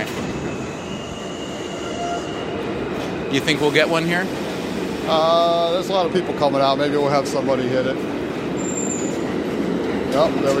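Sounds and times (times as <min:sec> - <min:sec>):
subway train arriving at a station: 0:00.0 - 0:10.5
high subway train wheel squeal: 0:00.3 - 0:02.6, 0:08.6 - 0:09.4
speech: 0:03.3 - 0:04.4, 0:05.1 - 0:08.2, 0:10.2 - 0:10.5.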